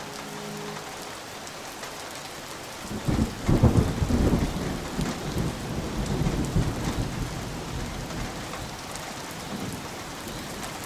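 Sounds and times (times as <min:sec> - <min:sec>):
steady rain of a rainstorm: 0:00.0 - 0:10.8
deep rumble of thunder: 0:02.8 - 0:10.8.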